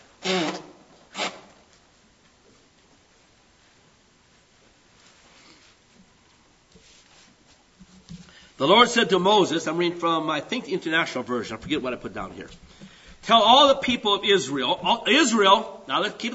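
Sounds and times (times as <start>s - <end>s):
person blowing nose: 0.2s - 1.6s
speech: 8.6s - 12.6s, 13.3s - 16.3s.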